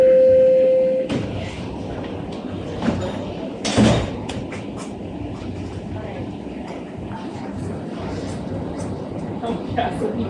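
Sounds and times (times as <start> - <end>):
steady subway warning tone: 0.0 - 1.1
subway train doors sliding shut with a whoosh and thud: 1.1 - 5.7
heavier closing bump of subway doors: 3.6 - 4.3.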